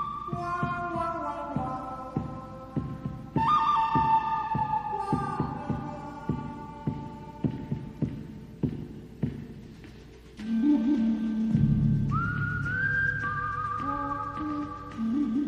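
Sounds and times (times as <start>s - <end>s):
whistled spaghetti-western style melody: 0.0s - 6.8s, 10.4s - 15.4s
slow thumping beats: 0.0s - 15.4s.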